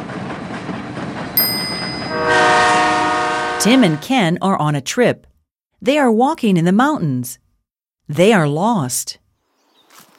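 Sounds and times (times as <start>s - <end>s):
train rumbling: 0.0s - 4.3s
train horn blaring: 1.4s - 4.0s
speech: 3.6s - 7.4s, 8.1s - 9.2s.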